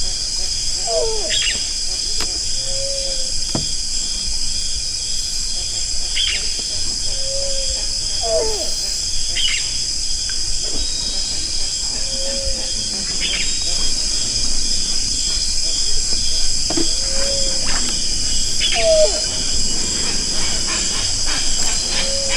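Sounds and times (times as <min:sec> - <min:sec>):
loud steady high insect chorus: 0:00.0 - 0:22.3
zigzag heron hooting call: 0:00.7 - 0:04.0, 0:07.1 - 0:09.6, 0:16.7 - 0:22.3.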